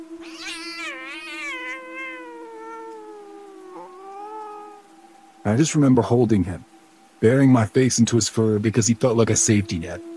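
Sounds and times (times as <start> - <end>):
cat hissing: 0.2 - 4.8
speech: 5.4 - 10.1.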